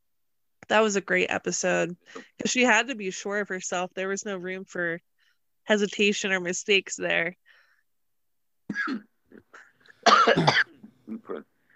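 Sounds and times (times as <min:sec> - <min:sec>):
speech: 0:00.7 - 0:07.4, 0:08.7 - 0:09.1, 0:10.2 - 0:11.5
person coughing: 0:08.7 - 0:11.4
throat clearing: 0:08.7 - 0:11.5.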